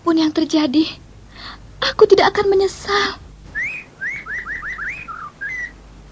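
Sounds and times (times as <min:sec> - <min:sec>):
speech: 0:00.2 - 0:01.0, 0:01.8 - 0:03.2
magpie robin singing: 0:03.5 - 0:05.8.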